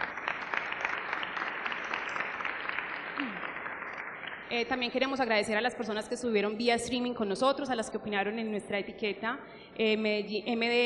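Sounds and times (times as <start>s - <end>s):
audience applause at the close of a talk: 0.0s - 4.5s
speech: 4.5s - 10.8s.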